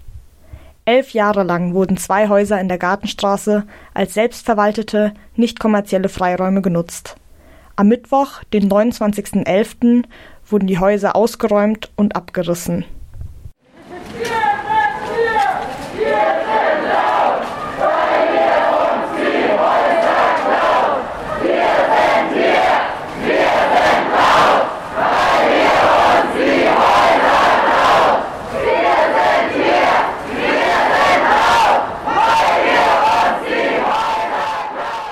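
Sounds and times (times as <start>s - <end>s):
speech: 0.9s - 7.2s, 7.8s - 13.0s
protest crowd shouting angry slogans: 13.8s - 35.1s.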